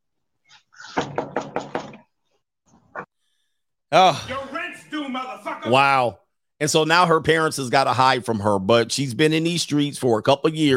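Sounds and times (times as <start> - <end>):
firm knocking on the front door of a parents' house: 1.0 - 2.1
speech: 3.9 - 10.7.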